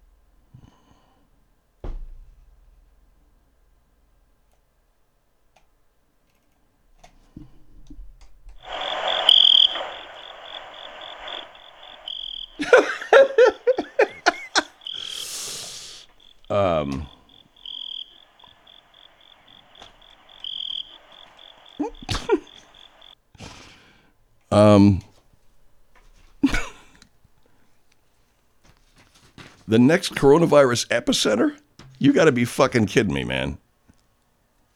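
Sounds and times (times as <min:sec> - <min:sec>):
recorded crickets chirping from a phone speaker: 0:08.6 - 0:23.7, 0:26.4 - 0:26.8, 0:29.7 - 0:33.5
people laughing: 0:09.8 - 0:17.3, 0:21.3 - 0:23.1, 0:26.4 - 0:26.8
speech: 0:24.5 - 0:25.1, 0:29.7 - 0:33.6.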